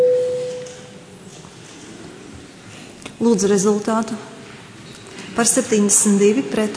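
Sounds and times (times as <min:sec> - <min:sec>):
parliament voting bell electronic signal tone: 0:00.0 - 0:00.7
speech: 0:03.2 - 0:04.3, 0:05.4 - 0:06.7.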